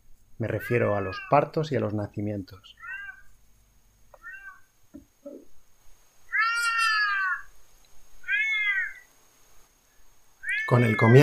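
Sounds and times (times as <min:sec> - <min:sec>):
speech: 0:00.4 - 0:02.9, 0:10.7 - 0:11.2
Iberian lynx meowing during mating season: 0:00.5 - 0:01.5, 0:02.8 - 0:03.3, 0:06.3 - 0:07.5, 0:08.2 - 0:09.1, 0:10.4 - 0:11.2.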